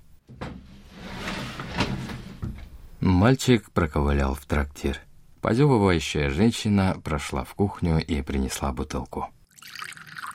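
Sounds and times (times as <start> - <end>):
door creaking and knocking as it swings: 0.2 - 2.9
speech: 3.1 - 10.0.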